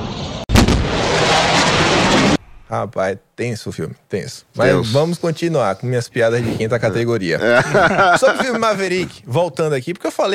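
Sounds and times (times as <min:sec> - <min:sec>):
sonic boom sound effect with rumbling roar: 0:00.0 - 0:02.7
speech: 0:02.7 - 0:10.3
laughter: 0:07.3 - 0:09.2.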